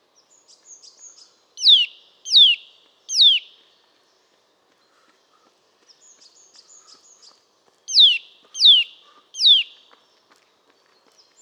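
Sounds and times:
Eurasian nuthatch Sitta europaea calling: 7.9s - 9.7s.

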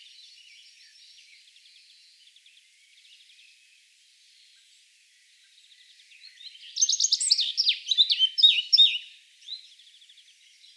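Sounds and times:
Eurasian blackcap singing: 6.2s - 9.6s.

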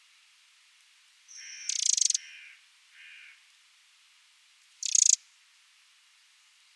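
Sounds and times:
Eurasian wren Troglodytes troglodytes ticking rattles: 1.3s - 2.4s, 4.7s - 5.2s.

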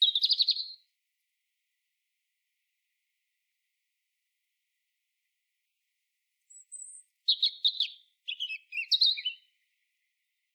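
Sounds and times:
European robin singing: 0.0s - 0.8s, 6.5s - 9.8s.

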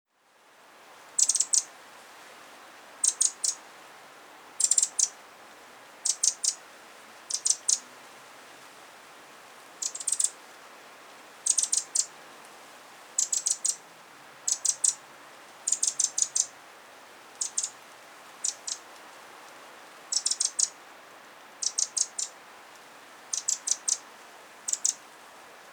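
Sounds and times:
faint steady hiss: 0.1s - 25.7s
Eurasian wren Troglodytes troglodytes calling with hard dry ticks: 1.2s - 1.7s, 3.0s - 3.6s, 4.6s - 5.2s, 6.0s - 6.6s, 7.3s - 7.8s, 9.8s - 10.4s, 11.5s - 12.1s, 13.2s - 13.8s, 14.5s - 15.0s, 15.7s - 16.5s, 17.4s - 17.8s, 18.4s - 18.8s, 20.1s - 20.8s, 21.6s - 22.4s, 23.3s - 24.0s, 24.7s - 25.0s.

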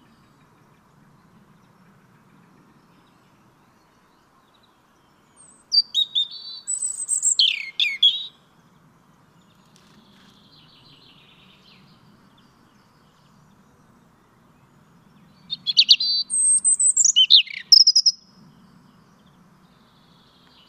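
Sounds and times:
European robin Erithacus rubecula singing warbled phrases: 5.4s - 8.4s, 15.3s - 18.2s.

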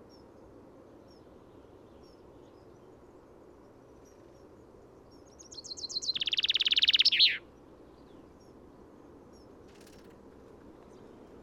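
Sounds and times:
Common chaffinch Fringilla coelebs singing: 5.2s - 8.2s.

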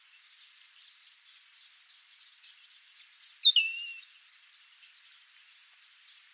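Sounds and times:
European robin Erithacus rubecula whistling high thin notes: 3.0s - 4.0s.

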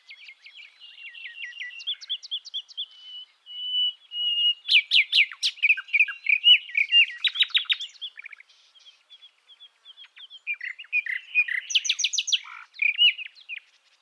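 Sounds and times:
common nightingale singing: 0.0s - 14.0s.

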